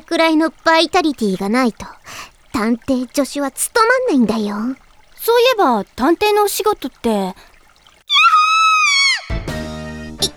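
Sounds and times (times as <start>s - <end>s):
speech: 0.1s - 7.5s
woman screaming: 8.1s - 9.5s.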